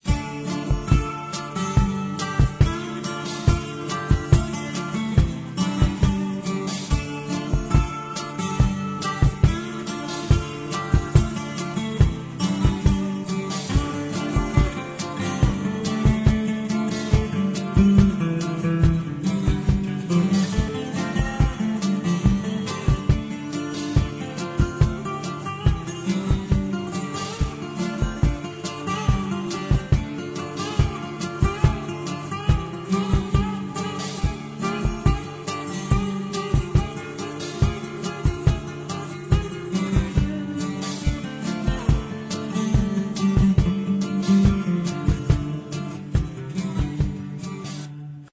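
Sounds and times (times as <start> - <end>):
music at home: 0.0 - 48.3.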